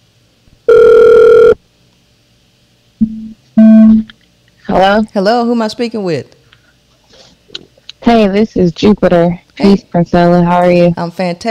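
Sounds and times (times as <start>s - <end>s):
electronic telephone ringing: 0.7s - 1.6s
short lower telephone beep: 3.0s - 4.0s
speech: 4.8s - 6.4s, 8.1s - 11.5s.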